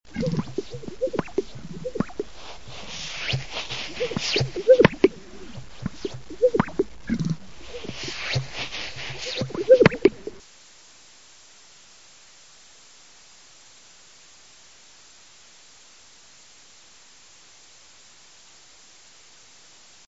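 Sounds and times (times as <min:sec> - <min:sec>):
greater sage grouse: 0:00.1 - 0:10.4.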